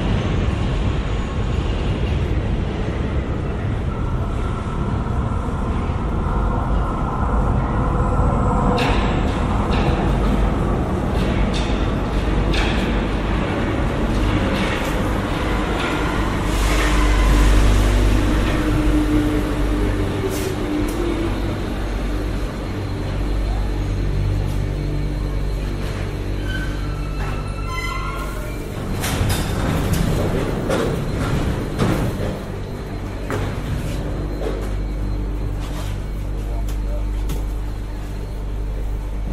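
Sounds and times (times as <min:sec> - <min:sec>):
metro train rumble and rattle: 0:00.0 - 0:39.3
metro train metallic squeals and clanks: 0:15.5 - 0:18.6, 0:24.6 - 0:33.1.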